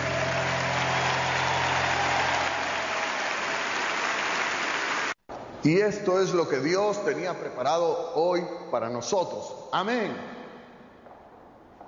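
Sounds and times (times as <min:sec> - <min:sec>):
crowd clapping in a big room: 0:00.0 - 0:05.2
speech: 0:05.6 - 0:10.4.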